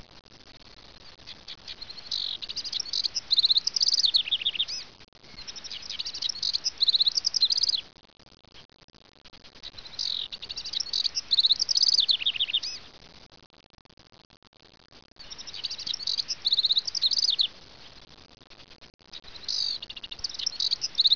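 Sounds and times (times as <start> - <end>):
squeaky birds in eastern Washington: 1.3 - 7.8, 9.8 - 12.8, 15.2 - 17.5, 19.2 - 21.1.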